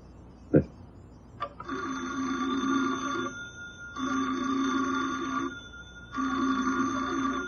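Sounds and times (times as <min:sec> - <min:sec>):
old telephone bell ringing in a small-town country store: 0:01.6 - 0:07.4.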